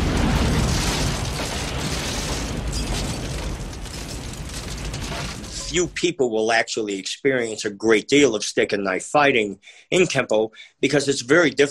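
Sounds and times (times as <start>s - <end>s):
loud sustained film explosion roaring: 0.0s - 6.0s
debris crackling: 0.0s - 6.2s
speech: 5.7s - 11.6s.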